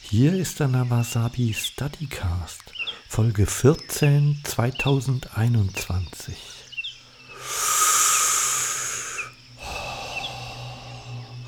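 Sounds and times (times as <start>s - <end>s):
speech: 0.1s - 6.6s
slow deliberate breathing during a meditation exercise: 2.7s - 3.2s, 6.4s - 11.4s.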